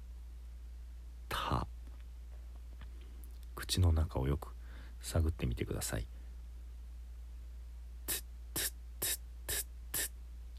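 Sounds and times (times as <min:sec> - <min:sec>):
speech: 0:03.7 - 0:06.2
person pronouncing a voiceless t consonant: 0:08.1 - 0:10.1.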